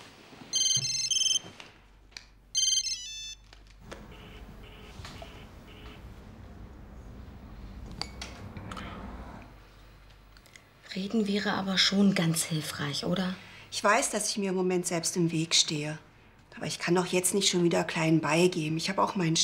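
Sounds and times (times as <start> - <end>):
low rustling and shuffling: 0.0 - 8.6
mobile phone ringtone chirping in bright electronic tones: 0.5 - 1.5, 2.6 - 3.4, 4.1 - 5.9
speech: 11.0 - 19.4.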